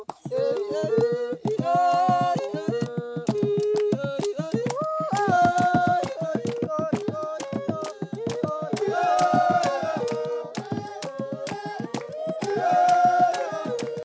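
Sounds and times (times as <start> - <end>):
divining music: 0.2 - 14.0.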